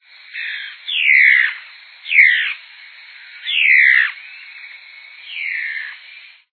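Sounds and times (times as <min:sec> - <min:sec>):
mae-de-taoca-de-garganta-vermelha calling: 0:00.2 - 0:06.5.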